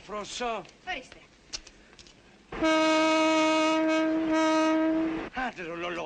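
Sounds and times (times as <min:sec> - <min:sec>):
low noise: 0:00.0 - 0:06.0
speech: 0:00.1 - 0:01.3, 0:02.6 - 0:02.8, 0:05.4 - 0:06.0
loud sustained train whistle: 0:02.6 - 0:05.3.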